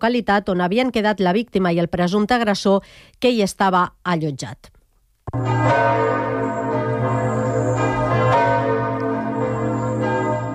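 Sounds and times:
speech: 0:00.0 - 0:04.7, 0:05.3 - 0:06.5
church bells across France pealing to welcome the Pope: 0:05.3 - 0:10.5.

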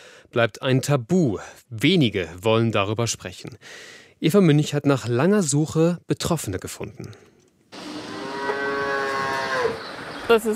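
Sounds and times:
speech: 0:00.3 - 0:07.4, 0:10.3 - 0:10.5
calf mooing at morning feeding time on a farm in Hohenlohe: 0:07.8 - 0:09.8.

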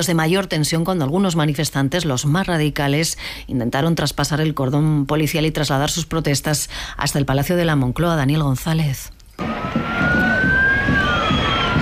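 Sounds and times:
speech: 0:00.0 - 0:10.3
police sirens wailing at a street demonstration: 0:09.4 - 0:11.8.

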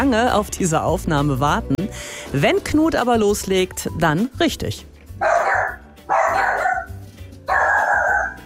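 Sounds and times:
speech: 0:00.0 - 0:05.3
10-month-old dog barking drawn-out barks: 0:05.2 - 0:08.4.

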